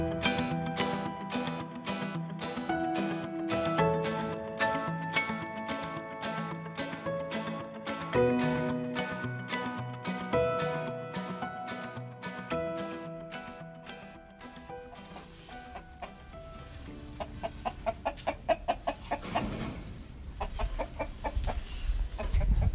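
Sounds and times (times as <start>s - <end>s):
soft musical passage: 0.0s - 19.2s
farmyard noise: 13.4s - 22.7s.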